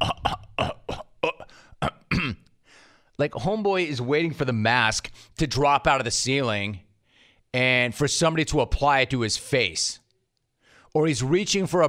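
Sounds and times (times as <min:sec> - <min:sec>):
man clearing his throat: 0:00.0 - 0:02.5
speech: 0:03.2 - 0:06.9, 0:07.5 - 0:10.0, 0:10.9 - 0:11.8.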